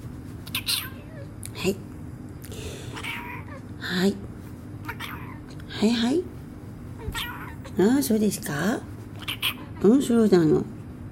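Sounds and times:
steady low hum: 0.0s - 11.1s
cat meowing: 0.5s - 1.3s, 2.9s - 3.7s, 4.8s - 5.6s, 7.0s - 7.8s, 9.2s - 9.8s
speech: 1.6s - 1.9s, 3.9s - 4.3s, 5.8s - 6.3s, 7.8s - 8.9s, 9.8s - 10.8s.

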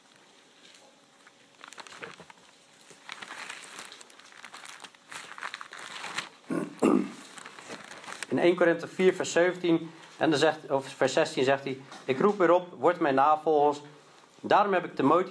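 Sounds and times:
book pages rustling as they are handled and flipped: 0.0s - 6.4s, 7.2s - 8.4s
speech: 8.3s - 15.2s.

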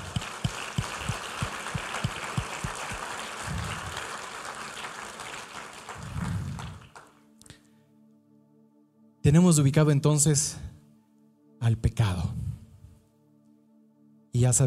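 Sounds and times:
low rhythmic thumps: 0.0s - 4.2s
crowd applauding: 0.0s - 7.1s
speech: 9.3s - 10.8s, 14.5s - 14.6s.

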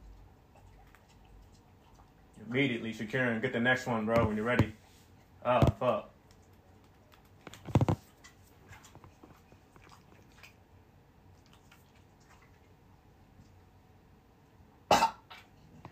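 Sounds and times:
speech: 2.5s - 4.8s, 5.4s - 6.1s
person coughing up peanuts: 14.9s - 15.4s.

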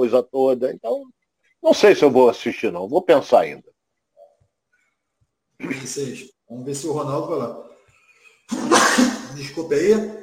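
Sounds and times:
speech: 0.0s - 3.7s, 5.6s - 7.7s, 8.5s - 10.2s
sneeze: 8.5s - 9.5s.

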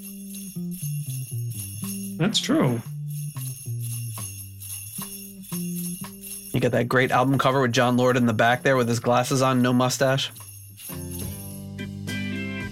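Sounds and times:
sleigh bells jingling: 0.0s - 12.7s
speech: 2.2s - 2.9s, 6.6s - 10.4s
non-Christmas rock song with sustained keyboard chords: 10.9s - 12.7s.

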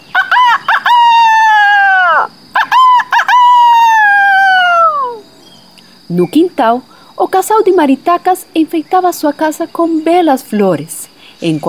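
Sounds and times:
rooster crowing: 0.0s - 5.3s
speech: 6.2s - 11.6s.

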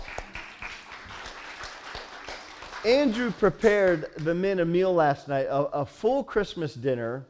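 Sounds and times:
audience applause: 0.0s - 4.2s
speech: 2.8s - 7.2s.

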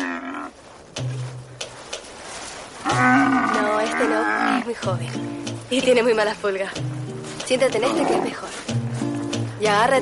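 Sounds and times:
camels groaning and bellowing: 0.0s - 0.7s, 2.8s - 4.8s, 7.7s - 8.5s
speech: 4.1s - 8.8s, 9.6s - 10.0s.

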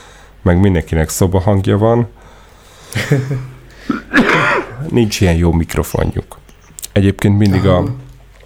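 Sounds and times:
speech: 0.4s - 2.2s, 2.9s - 6.4s, 7.0s - 8.1s
laughter: 2.8s - 5.2s
heavy wet chesty coughs into elbow: 3.8s - 4.9s.

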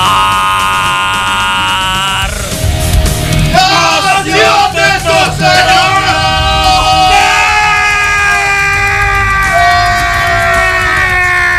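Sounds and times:
person screaming loudly: 0.0s - 2.7s, 5.8s - 11.5s
noisy clamor: 0.0s - 11.5s.

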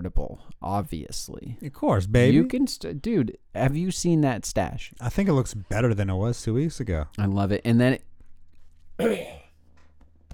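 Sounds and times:
speech: 0.4s - 8.1s, 9.0s - 9.4s
cough: 9.0s - 9.5s.

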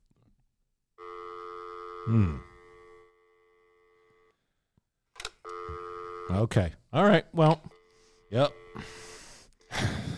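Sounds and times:
electronic telephone ring tone on an open phone line: 1.0s - 4.3s, 5.4s - 6.4s, 7.7s - 9.1s
speech: 2.0s - 2.5s, 6.3s - 7.7s, 8.3s - 9.1s.

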